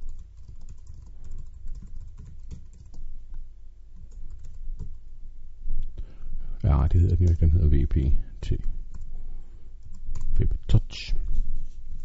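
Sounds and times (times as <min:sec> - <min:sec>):
typing on a computer keyboard: 0:00.0 - 0:03.1, 0:04.0 - 0:05.0, 0:09.8 - 0:10.4
speech: 0:06.6 - 0:08.8, 0:10.4 - 0:11.2.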